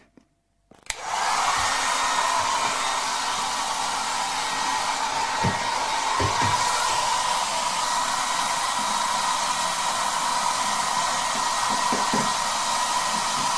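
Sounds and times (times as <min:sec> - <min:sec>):
hair dryer blowing to defrost a freezer: 0:00.9 - 0:13.5.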